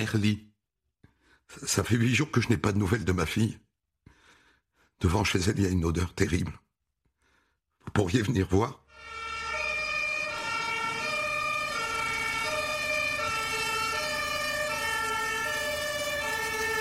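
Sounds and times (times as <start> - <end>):
speech: 0.0 - 0.5, 1.5 - 3.7, 5.0 - 6.6, 7.9 - 8.8
fire engine two-tone siren wailing: 8.9 - 16.8.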